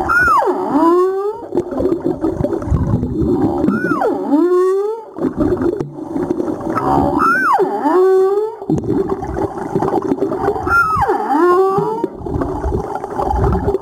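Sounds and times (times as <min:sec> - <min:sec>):
humpback whale calls: 0:00.0 - 0:01.6, 0:03.4 - 0:05.2, 0:06.8 - 0:08.7, 0:10.5 - 0:12.2
crackling gurgling underwater noise: 0:00.0 - 0:13.8.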